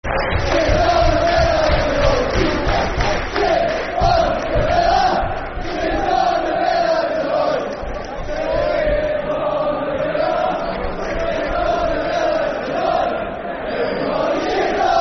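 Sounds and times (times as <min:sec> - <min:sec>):
football crowd chanting: 0:00.0 - 0:15.0.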